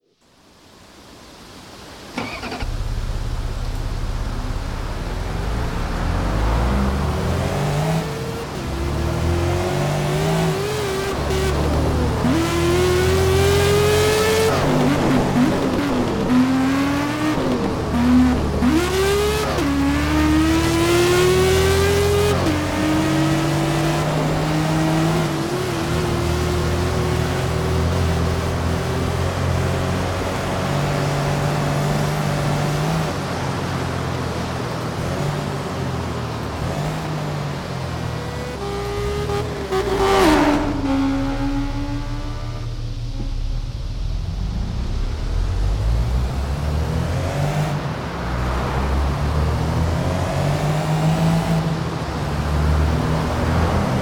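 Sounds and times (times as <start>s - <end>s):
Renault Laguna car: 0.0s - 54.0s.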